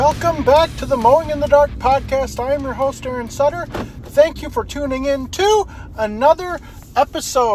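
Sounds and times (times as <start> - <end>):
truck engine and road rumble: 0.0 - 7.5
speech: 0.1 - 7.5.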